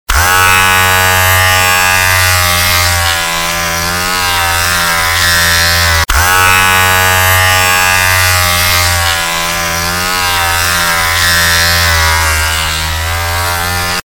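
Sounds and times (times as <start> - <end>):
electric shaver: 0.1 - 14.0.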